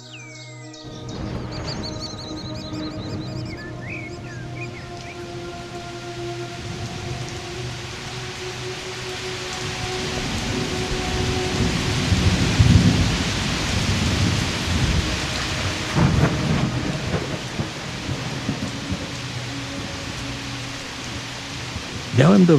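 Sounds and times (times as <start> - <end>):
birds chirping: 0.0 - 5.6
heavy rain pouring down: 0.9 - 22.5
speech: 22.2 - 22.5.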